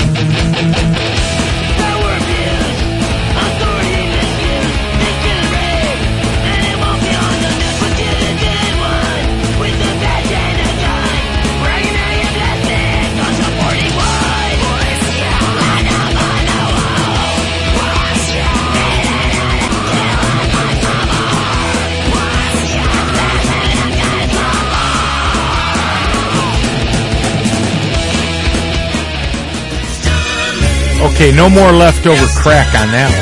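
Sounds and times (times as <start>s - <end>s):
distorted guitars in a punk song: 0.0s - 33.2s
harsh screamed vocals in a punk song: 3.4s - 26.8s
speech: 31.2s - 33.2s.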